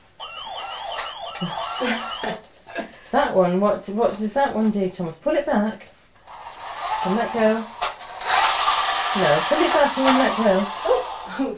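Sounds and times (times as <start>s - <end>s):
toy ambulance siren wailing: 0.2s - 2.4s
speech: 1.4s - 5.9s, 7.0s - 7.8s, 9.2s - 11.5s.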